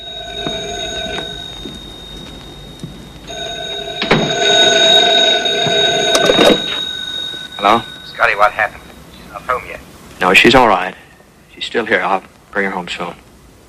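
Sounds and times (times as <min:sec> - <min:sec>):
telephone ringing with a bright electronic tone: 0:00.0 - 0:09.1
speech: 0:07.7 - 0:08.8, 0:09.4 - 0:11.0, 0:11.6 - 0:13.2.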